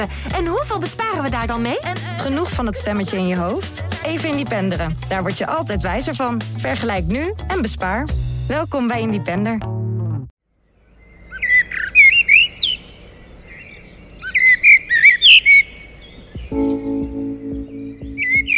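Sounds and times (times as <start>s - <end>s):
speech: 0.0s - 9.8s
common blackbird singing fluty warbling phrases: 10.6s - 18.5s.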